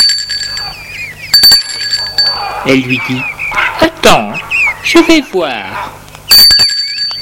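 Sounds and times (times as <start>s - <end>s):
bell ringing at a gate intercom: 0.0s - 3.2s, 6.3s - 7.1s
speech: 2.6s - 6.0s.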